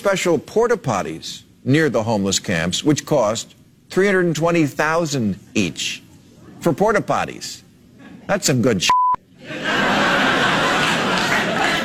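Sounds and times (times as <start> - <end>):
speech: 0.0 - 6.0, 6.6 - 7.6, 8.3 - 9.0
short electronic beep: 8.9 - 9.2
laughter: 9.4 - 11.8.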